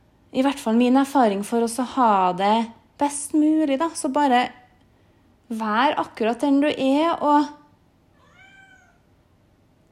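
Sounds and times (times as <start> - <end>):
speech: 0.3 - 4.6, 5.5 - 7.6
cat meowing for attention: 8.1 - 9.1.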